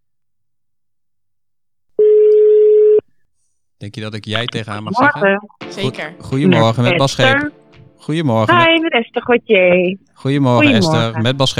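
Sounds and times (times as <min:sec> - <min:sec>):
telephone ringback tone as a call is placed: 0:02.0 - 0:03.0
speech: 0:03.8 - 0:11.5.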